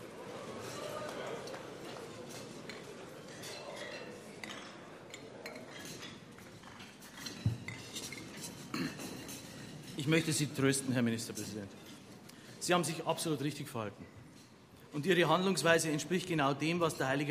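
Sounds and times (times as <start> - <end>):
hubbub of people chatting and moving about in a crowded room: 0.0 - 17.3
glasses clinking during a toast: 2.8 - 10.3
speech: 10.0 - 11.9, 12.7 - 14.2, 14.9 - 17.3.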